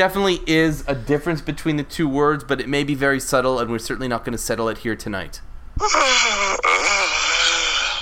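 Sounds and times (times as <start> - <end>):
speech: 0.0 - 6.6
person yawning: 5.8 - 8.0.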